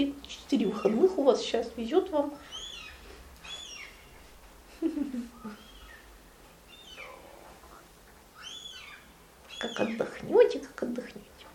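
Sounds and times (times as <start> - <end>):
speech: 0.0 - 2.6, 4.8 - 5.6, 9.6 - 11.2
small bird singing in high chirping phrases: 2.2 - 4.2, 5.3 - 7.5, 8.3 - 10.3.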